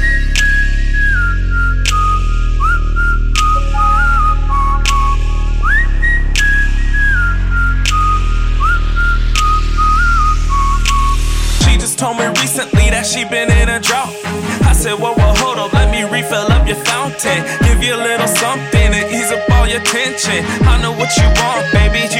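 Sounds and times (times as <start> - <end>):
person whistling a melody: 0.0 - 22.1
steady thumping beat with sharp rhythmic clicks: 10.8 - 22.1
speech: 12.1 - 14.2.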